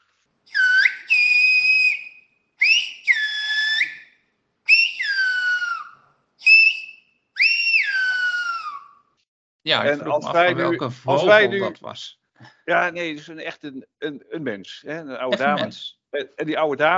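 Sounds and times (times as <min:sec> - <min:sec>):
person whistling whistled language in sliding tones: 0:00.5 - 0:04.1, 0:04.7 - 0:08.9
speech: 0:09.7 - 0:16.9
laughter: 0:09.8 - 0:11.8, 0:12.7 - 0:15.8.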